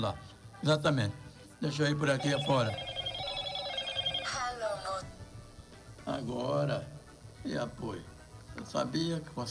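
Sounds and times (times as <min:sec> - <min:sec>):
speech: 0:00.0 - 0:02.9, 0:06.1 - 0:09.4
telephone ringing with a warbling electronic tone: 0:02.1 - 0:05.1.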